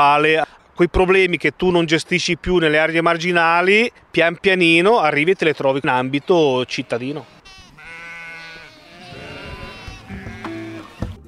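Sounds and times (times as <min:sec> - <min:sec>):
speech: 0:00.0 - 0:07.4
Brianzola sheep bleating: 0:05.7 - 0:11.2.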